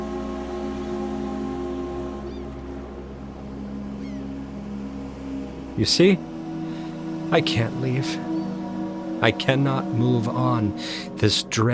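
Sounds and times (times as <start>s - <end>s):
ferry whistle blast as ferry pulls away from a wharf: 0.0s - 2.6s
ferry boat engine rumble: 0.0s - 11.7s
speech: 5.8s - 6.3s, 7.3s - 8.3s, 9.2s - 11.7s.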